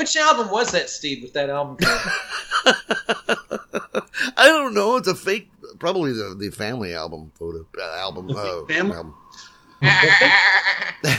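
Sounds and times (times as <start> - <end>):
speech: 0.0 - 3.4, 4.2 - 11.1
laughter: 1.8 - 4.9, 7.8 - 9.0, 9.8 - 11.1
goat bleating: 9.8 - 11.0.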